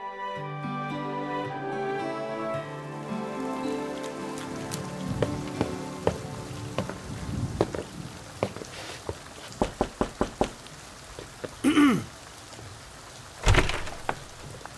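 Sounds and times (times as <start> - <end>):
soft sustained musical tones: 0.0 - 7.4
steady rain pattering: 2.6 - 14.7.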